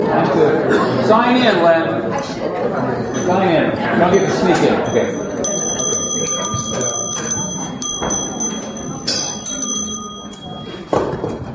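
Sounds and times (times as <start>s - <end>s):
dense murmur of noise: 0.0s - 11.5s
speech: 1.1s - 5.3s
bell ringing: 3.0s - 11.5s.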